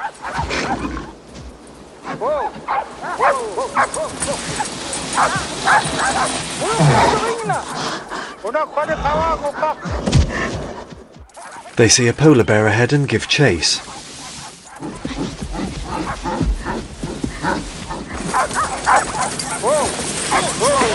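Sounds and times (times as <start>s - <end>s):
pack of sled dogs pulling dog sleds barking and yipping excitedly: 0.0s - 0.8s, 2.0s - 8.5s, 10.8s - 11.8s, 13.8s - 20.9s
speech: 2.2s - 10.5s, 11.8s - 13.9s.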